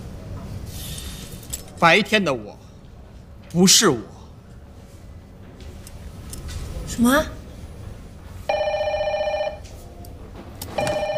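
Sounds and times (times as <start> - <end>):
speech: 1.8 - 2.6, 3.5 - 4.1, 7.0 - 7.4
telephone ringing with an electronic trill: 8.5 - 9.7, 10.8 - 11.1.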